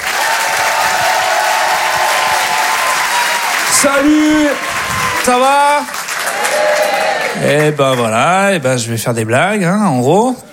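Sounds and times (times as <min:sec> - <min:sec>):
audience cheering and whooping at a stand-up comedy show: 0:00.0 - 0:07.5
audience clapping for a performer at a stand-up comedy show: 0:00.0 - 0:08.6
speech: 0:03.8 - 0:06.0, 0:07.4 - 0:10.5.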